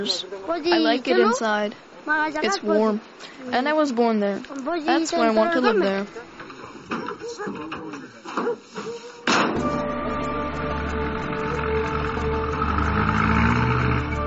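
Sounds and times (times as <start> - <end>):
speech: 0.0 - 6.3, 6.9 - 7.8
truck engine roaring: 9.5 - 14.2.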